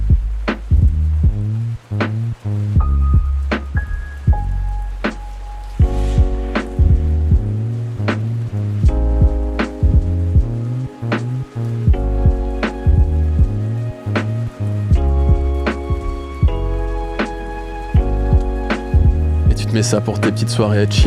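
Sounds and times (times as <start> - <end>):
light hiss of rain: 0.0 - 21.0
mellow lo-fi track with steady chords and soft tapping beats: 0.0 - 21.0
speech: 19.8 - 21.0.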